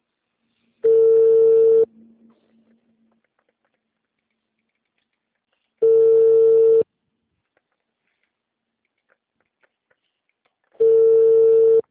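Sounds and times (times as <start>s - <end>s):
ringback tone of a telephone call being placed: 0.8s - 1.9s, 5.8s - 6.8s, 10.8s - 11.8s.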